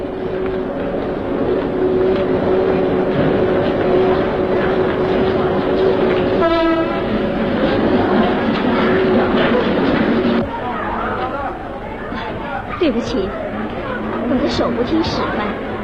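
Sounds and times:
train pulling into a station: 0.0s - 15.8s
train horn blast: 6.3s - 7.2s
speech: 13.0s - 13.4s, 14.6s - 15.4s.

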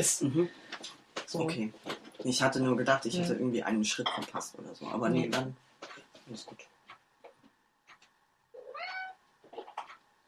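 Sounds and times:
speech: 0.0s - 6.7s
several cats meowing while being fed: 8.6s - 10.0s.

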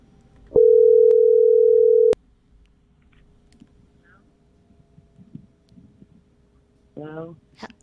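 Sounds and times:
telephone dial tone: 0.6s - 2.2s.

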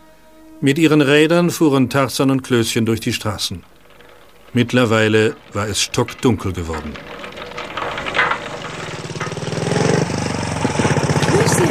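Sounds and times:
speech: 0.6s - 3.8s, 4.5s - 7.2s
motorcycle engine passing along a dark street at night: 3.2s - 11.7s.

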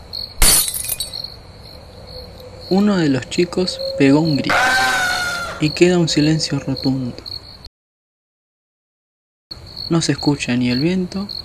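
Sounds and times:
stemmed glass cup shattering: 0.4s - 1.3s
faint steady high-pitched tone: 2.2s - 7.2s
speech: 2.7s - 5.0s, 5.6s - 7.3s, 9.9s - 11.4s.

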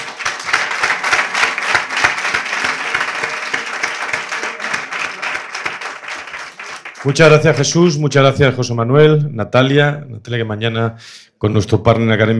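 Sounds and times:
audience applause at a business event: 0.0s - 7.8s
speech: 7.0s - 12.3s.

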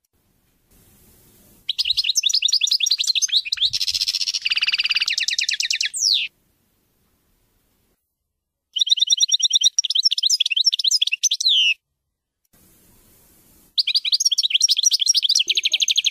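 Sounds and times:
European goldfinch singing: 1.7s - 6.3s, 8.8s - 11.8s, 13.8s - 16.0s.

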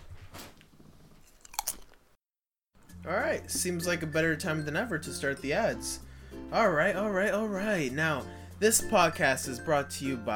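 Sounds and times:
chip being bitten and chewed: 1.2s - 2.0s
speech: 3.0s - 10.3s.

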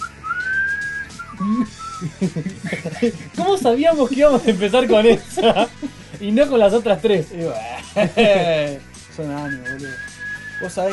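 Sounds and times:
person whistling a short tune: 0.0s - 2.1s, 9.4s - 10.9s
laughter: 1.4s - 6.3s, 7.7s - 8.8s
speech: 1.4s - 10.9s.

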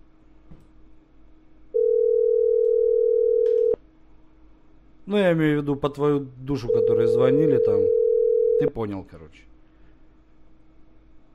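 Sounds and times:
steady mid-pitched telephone tone after the other side hangs up: 1.7s - 3.8s, 6.6s - 8.6s
sharp click: 3.4s - 3.7s
speech: 5.1s - 8.0s, 8.6s - 9.5s.

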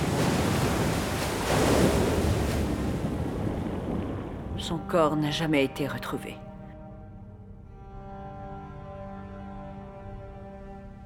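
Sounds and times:
sea waves surging: 0.0s - 4.9s
buffeting wind: 0.0s - 5.0s
speech: 4.7s - 6.5s.

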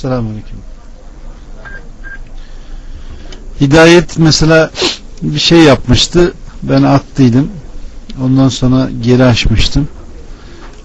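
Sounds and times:
speech: 0.0s - 0.8s, 3.6s - 7.6s, 8.2s - 10.0s
low hiss: 0.0s - 10.8s
telephone signalling tones: 1.6s - 2.3s.

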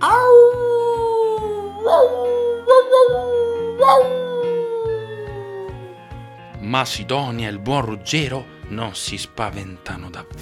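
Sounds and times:
animal howling while giving chase: 0.0s - 6.3s
speech: 6.8s - 10.4s.

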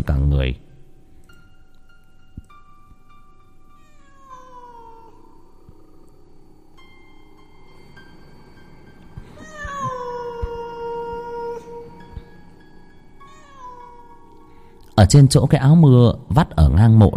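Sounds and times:
speech: 0.0s - 0.7s, 15.0s - 17.1s
black cat meowing by a grave: 3.7s - 5.4s, 9.3s - 12.2s, 13.2s - 14.4s.

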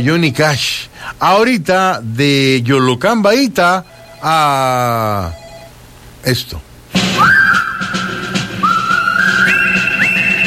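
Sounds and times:
speech: 0.0s - 5.4s, 6.2s - 7.6s
person whistling a tune: 7.2s - 8.0s, 8.6s - 10.4s.

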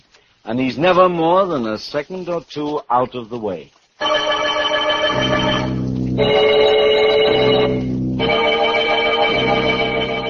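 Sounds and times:
speech: 0.4s - 4.3s, 5.2s - 6.6s
bells ringing in a padded cell: 4.0s - 10.2s.

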